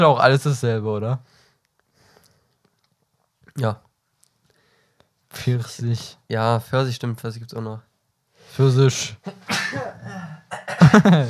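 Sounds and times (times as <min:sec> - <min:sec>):
speech: 0:00.0 - 0:01.4, 0:03.6 - 0:03.8, 0:05.3 - 0:07.9, 0:08.5 - 0:11.2
person sneezing: 0:09.3 - 0:11.2
laughter: 0:10.8 - 0:11.2.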